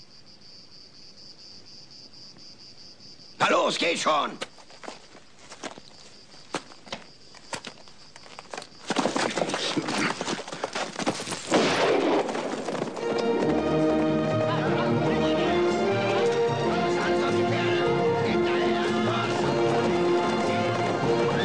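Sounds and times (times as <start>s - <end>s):
speech: 3.4s - 4.5s
black horse galloping hooves: 4.4s - 21.4s.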